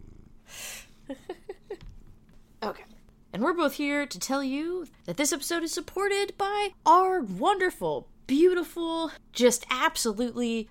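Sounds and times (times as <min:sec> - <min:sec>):
cat purring while being held: 0:00.0 - 0:01.9
speech: 0:03.4 - 0:10.6.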